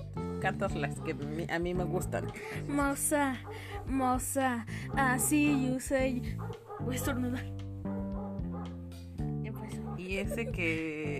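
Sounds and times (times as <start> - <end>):
speech: 0.4 - 7.6, 10.2 - 11.1
large dog barking outside: 2.1 - 2.6, 3.3 - 4.0, 4.8 - 5.8, 6.4 - 7.0, 8.1 - 8.8, 9.5 - 10.1.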